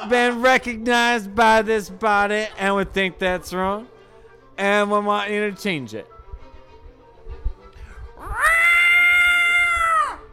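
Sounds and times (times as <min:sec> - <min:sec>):
speech: 0:00.0 - 0:03.9, 0:04.6 - 0:06.1
cat yowling: 0:08.2 - 0:10.3.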